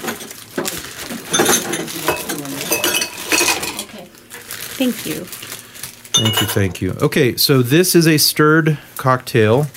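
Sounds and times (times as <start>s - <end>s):
cocktail glasses clinking against a hard surface as they are set out: 1.3s - 3.9s, 6.2s - 6.8s
speech: 4.8s - 5.4s, 6.2s - 9.7s.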